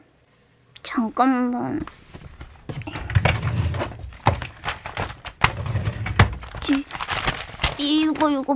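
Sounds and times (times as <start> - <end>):
speech: 1.0 - 2.2, 7.8 - 8.5
soft thumps: 1.7 - 8.4
torn notebook paper pieced together with tape crinkling: 1.7 - 8.5.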